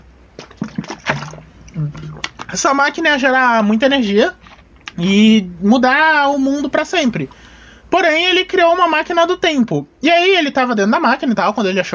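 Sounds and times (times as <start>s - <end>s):
sipping and swallowing water: 0.2s - 2.6s
speech: 1.8s - 4.4s, 5.0s - 11.9s.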